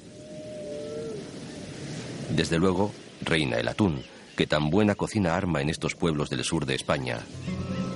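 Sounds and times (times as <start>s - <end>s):
whale call: 0.0s - 1.5s
speech: 2.3s - 7.6s.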